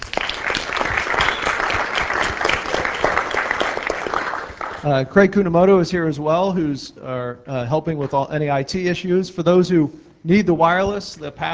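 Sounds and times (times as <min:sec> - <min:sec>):
audience applause for conference organizer: 0:00.0 - 0:05.0
speech: 0:04.8 - 0:11.5.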